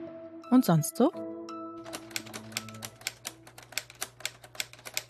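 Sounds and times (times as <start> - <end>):
speech: 0.6 - 1.2
Lego-brick typewriter keys clacking: 1.8 - 5.0.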